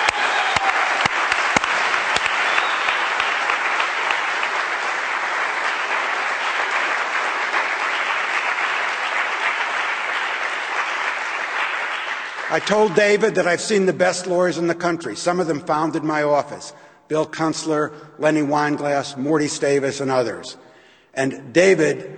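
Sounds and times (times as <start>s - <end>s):
sharper individual claps: 0.0s - 12.7s
crowd applause: 0.0s - 13.1s
speech: 12.5s - 20.6s, 21.2s - 22.1s.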